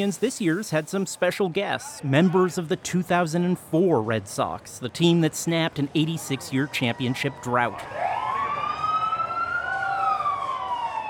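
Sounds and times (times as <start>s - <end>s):
speech: 0.0s - 8.1s
crowd noise: 0.0s - 11.0s
police escort siren wailing: 6.7s - 11.0s.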